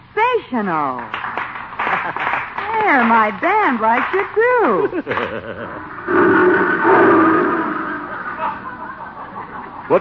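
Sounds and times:
speech: 0.4 - 1.2, 2.0 - 7.6
laughter: 1.7 - 6.1, 7.9 - 9.9
lion roaring: 5.6 - 9.9.

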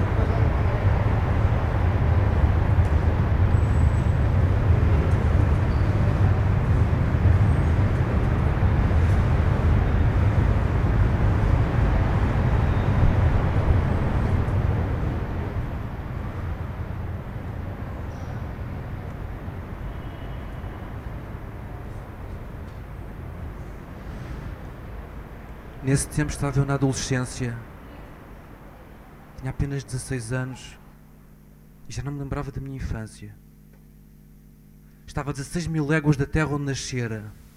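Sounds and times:
train rolling along the rails into a station: 0.0 - 28.5
speech: 25.9 - 27.7, 29.4 - 30.8, 31.9 - 33.4, 35.1 - 37.4.

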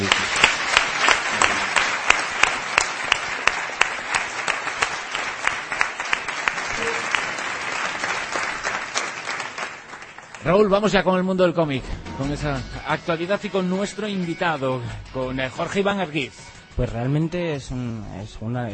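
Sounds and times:
crowd applauding: 0.0 - 11.0
speech: 10.4 - 18.7.

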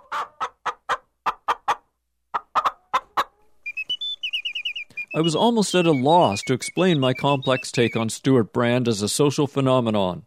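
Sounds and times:
chicken clucking: 0.0 - 8.1
higher squeaky peeping calls: 2.6 - 8.2
speech: 5.2 - 10.2.

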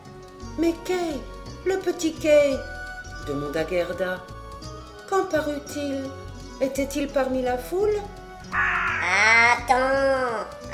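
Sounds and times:
speech: 0.6 - 4.3, 5.1 - 8.8, 9.6 - 10.5
crow cawing: 8.5 - 9.7.

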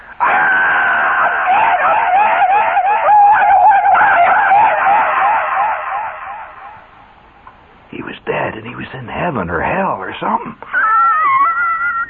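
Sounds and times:
voice imitating a man's long wavering yell: 0.2 - 4.8
laughter: 0.2 - 6.4, 10.6 - 12.0
speech: 9.3 - 10.8.

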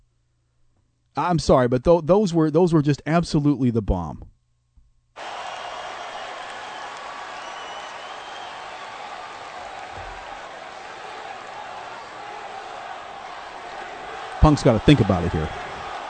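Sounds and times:
speech: 1.2 - 4.3, 14.4 - 15.7
big crowd screaming and cheering: 5.2 - 16.0.

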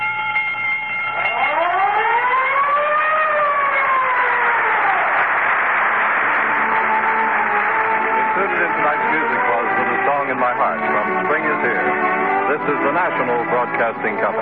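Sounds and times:
steady ringing bell tone of a broadcast sign-off: 0.0 - 1.8
broadcast sign-off siren wailing: 0.0 - 14.4
speech: 13.0 - 14.4.

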